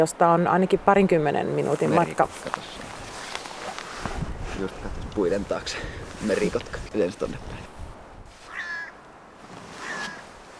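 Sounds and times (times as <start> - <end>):
speech: 0.0 - 2.9, 4.6 - 7.7
outdoor hiss: 0.0 - 10.5
hooded crows cawing: 8.4 - 9.1, 9.8 - 10.3.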